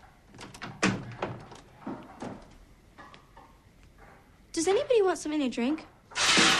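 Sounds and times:
kitchen door closing with soft wooden thuds: 0.3 - 2.6
speech: 4.6 - 6.5.

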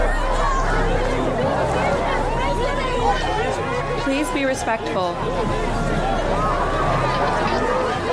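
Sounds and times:
dense crowd chattering: 0.0 - 8.1
speech: 4.5 - 6.1.

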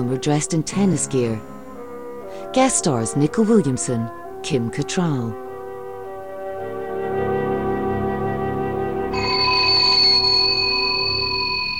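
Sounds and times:
speech: 0.0 - 1.6, 2.3 - 5.4
continuous droning musical background: 0.0 - 11.7
old-fashioned antique telephone in a wooden unit ringing: 9.2 - 11.7.

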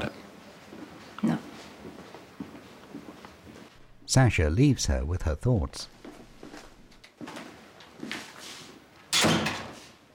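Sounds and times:
speech: 4.1 - 6.0
motorhome door banging open: 9.2 - 9.8.

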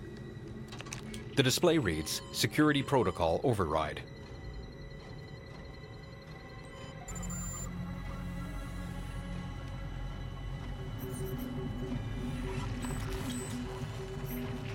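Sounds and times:
speech: 1.4 - 4.1
3D printer motor hum and stepping tones: 4.0 - 14.7.

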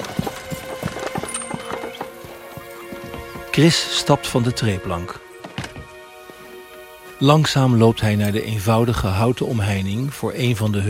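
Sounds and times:
horse-drawn carriage hooves clip-clopping along a rural road: 0.0 - 8.4
speech: 3.6 - 5.2, 7.2 - 10.8.

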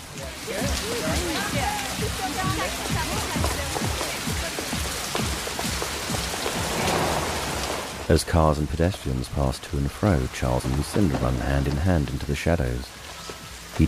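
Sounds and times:
steady rain falling on a city street: 0.0 - 13.8
speech: 8.1 - 13.0.

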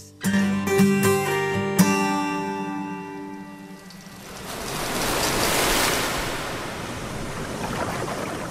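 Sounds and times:
sustained musical tones: 0.2 - 5.1
ocean waves breaking: 3.2 - 8.5
surfer plunging off his board into the ocean: 4.0 - 8.5.

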